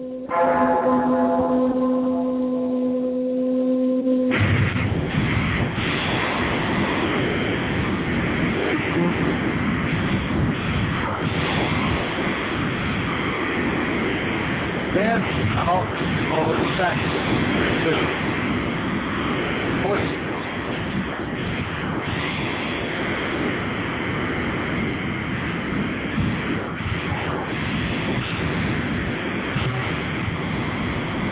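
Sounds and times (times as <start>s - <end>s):
low tolling bells: 0.0s - 5.2s
sludgy slowed-down metal song with distorted guitars and drums: 0.0s - 31.3s.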